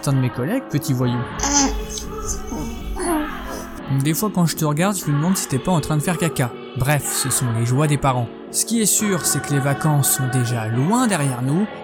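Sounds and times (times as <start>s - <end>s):
speech: 0.0s - 2.7s, 3.9s - 11.8s
baby babbling: 1.4s - 3.8s.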